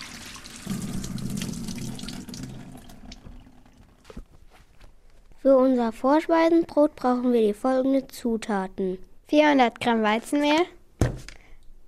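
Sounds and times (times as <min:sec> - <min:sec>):
water running from a tap while hands are washed: 0:00.0 - 0:04.0
speech: 0:05.4 - 0:11.3.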